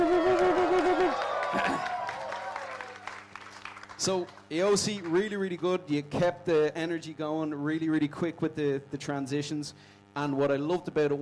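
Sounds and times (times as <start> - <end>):
wavering vocal cheer: 0.0 - 3.0
audience applause for a DJ's performance: 0.0 - 4.4
speech: 4.0 - 11.2.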